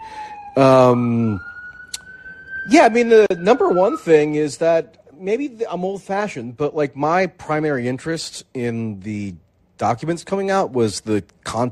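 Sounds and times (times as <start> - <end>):
siren blaring outside a window: 0.0 - 4.9
speech: 0.6 - 1.5, 2.6 - 11.7.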